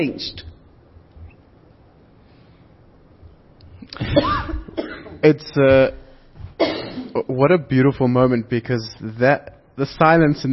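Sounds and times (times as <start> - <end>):
speech: 0.0 - 0.5, 3.9 - 4.6, 5.2 - 6.0, 6.6 - 10.5
woman coughing: 4.0 - 5.2, 6.6 - 7.2.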